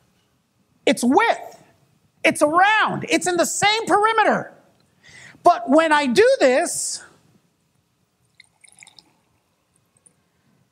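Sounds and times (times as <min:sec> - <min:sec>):
speech: 0:00.9 - 0:01.6, 0:02.2 - 0:04.6, 0:05.4 - 0:07.1
water poured from a jar into a cup: 0:08.3 - 0:09.4.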